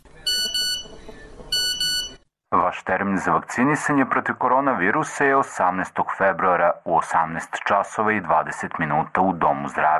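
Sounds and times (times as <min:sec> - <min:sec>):
phone text message notification tone: 0:00.3 - 0:02.2
speech: 0:02.7 - 0:09.9.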